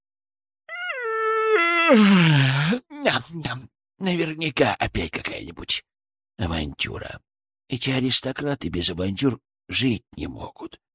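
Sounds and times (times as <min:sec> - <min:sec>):
loud drawn-out yawn from a chipmunk familiar: 0:00.7 - 0:02.9
speech: 0:01.9 - 0:10.9.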